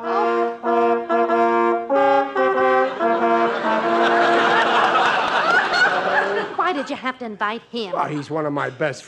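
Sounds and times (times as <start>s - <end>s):
hearse sounding sustained mournful horn notes: 0.0s - 4.7s
laughter: 2.6s - 7.2s, 7.9s - 9.0s
speech: 6.8s - 9.0s.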